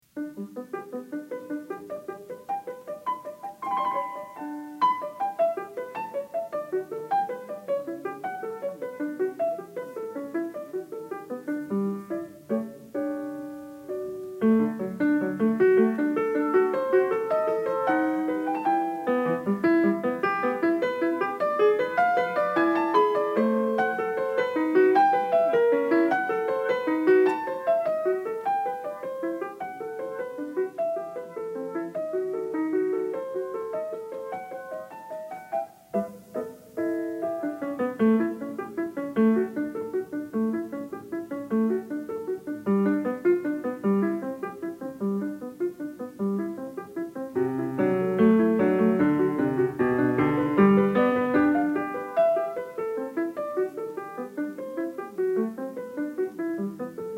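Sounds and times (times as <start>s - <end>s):
keyboard piece in G major in minuet tempo: 0.2s - 57.1s.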